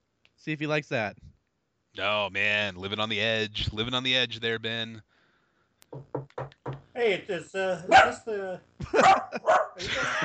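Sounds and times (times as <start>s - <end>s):
speech: 0.4s - 1.3s, 2.0s - 5.1s, 5.9s - 6.1s, 7.0s - 10.2s
dog barking while guarding a house: 7.9s - 8.2s, 9.0s - 9.8s
laughter: 8.8s - 10.2s.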